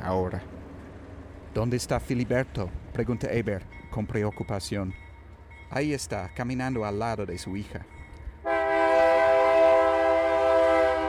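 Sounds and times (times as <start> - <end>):
speech: 0.1 - 0.6, 1.5 - 5.0, 5.7 - 7.9
freight train horn blast: 8.4 - 11.0.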